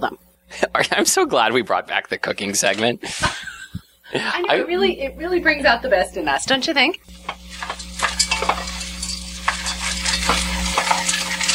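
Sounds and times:
speech: 0.0 - 3.5, 4.1 - 7.7
steady low hum: 0.0 - 11.5
laughter: 0.6 - 1.8, 3.0 - 4.8
frozen peas being stirred in a pan: 7.1 - 11.5.

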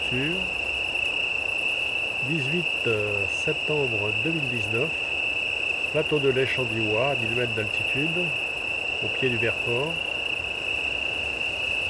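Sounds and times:
Italian tree cricket Oecanthus pellucens chorus trilling on a plateau in Drôme: 0.0 - 11.8
speech: 0.1 - 0.6, 2.2 - 5.1, 5.9 - 8.4, 9.0 - 10.1.

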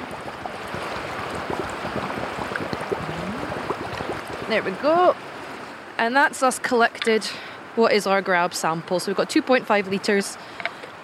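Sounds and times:
bottle glugging as it fills underwater in a river: 0.0 - 4.8
dense bubbling and gurgling: 0.0 - 5.6
steady rush of flowing river water: 0.0 - 11.0
speech: 4.5 - 5.3, 6.0 - 10.6.

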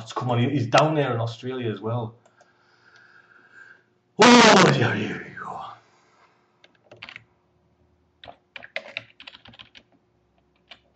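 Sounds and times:
speech: 0.1 - 2.2, 4.2 - 5.7
computer keyboard typing: 6.7 - 7.2, 8.2 - 10.9.

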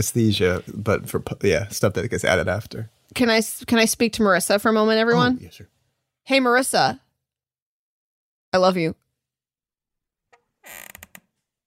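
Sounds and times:
speech: 0.0 - 7.0, 8.5 - 9.0
chair squeaking: 10.3 - 11.4.

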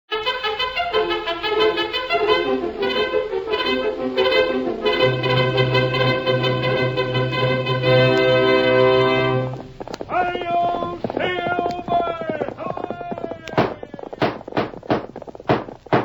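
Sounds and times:
sustained brassy musical chord: 0.1 - 9.6
horse hooves galloping: 4.8 - 15.9.

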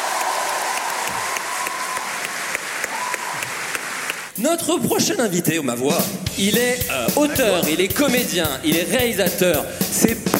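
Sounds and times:
faint voice or cheer: 0.0 - 4.3
crowd applauding: 0.0 - 4.4
speech: 4.4 - 10.3.

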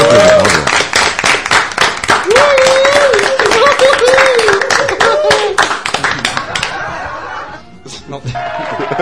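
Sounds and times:
small crowd applauding: 0.0 - 7.0
laughter: 6.1 - 8.9.

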